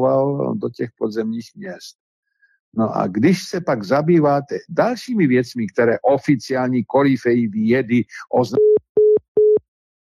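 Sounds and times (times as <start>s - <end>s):
speech: 0.0s - 2.0s, 2.7s - 8.7s
telephone ringing tone while calling back a dropped caller: 8.6s - 9.6s.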